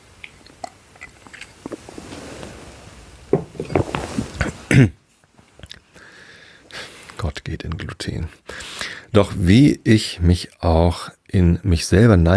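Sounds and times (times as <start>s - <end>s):
speaker sipping a drink with mouth clicks and a gulp: 0.2s - 4.7s
speech: 4.8s - 5.0s, 7.5s - 8.5s, 9.1s - 12.3s.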